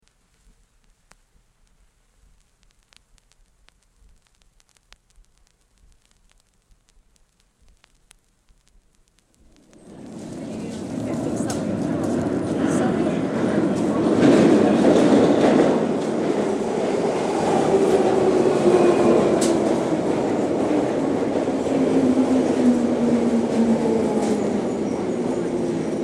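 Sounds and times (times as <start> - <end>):
train entering station: 9.7 - 26.0.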